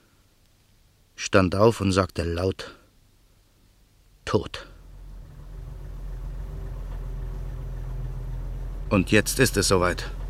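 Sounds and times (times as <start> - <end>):
speech: 1.2 - 2.8, 4.3 - 4.7, 8.9 - 10.2
car engine idling quietly: 4.7 - 10.2.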